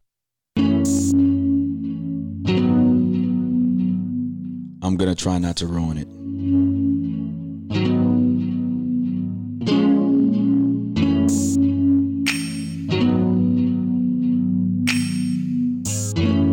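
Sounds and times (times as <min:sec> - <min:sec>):
heavily effected electronic remix: 0:00.6 - 0:04.7, 0:06.1 - 0:16.5
speech: 0:05.0 - 0:06.2.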